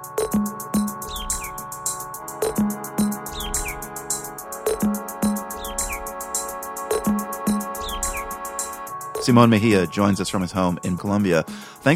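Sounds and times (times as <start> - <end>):
electronic beat with deep bass pulses: 0.0 - 9.5
bird chirps: 0.8 - 6.2, 7.0 - 8.4
speech: 9.2 - 11.9.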